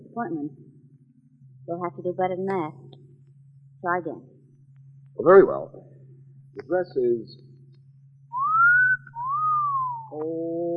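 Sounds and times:
low steady hum: 0.0s - 10.7s
speech: 0.2s - 0.7s, 1.7s - 2.8s, 3.8s - 4.3s, 5.2s - 6.0s, 6.6s - 7.5s, 10.1s - 10.7s
two-part wolf whistle: 8.4s - 10.2s.

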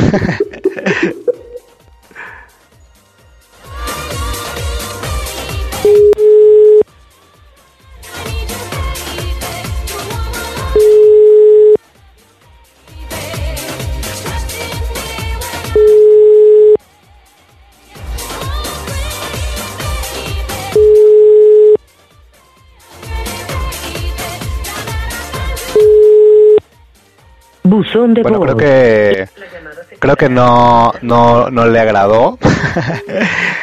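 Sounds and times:
laughter: 0.0s - 1.7s, 32.4s - 33.6s
speech: 0.1s - 1.2s, 27.8s - 33.6s
outgoing phone call ringing tone: 5.8s - 6.8s, 10.8s - 11.8s, 15.8s - 16.8s, 20.8s - 21.8s, 25.8s - 26.6s.

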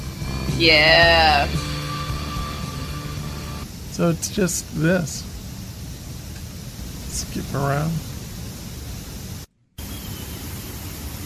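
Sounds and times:
white noise from a played video: 0.0s - 11.2s
speech: 0.6s - 1.7s, 4.0s - 5.3s, 7.2s - 8.1s.

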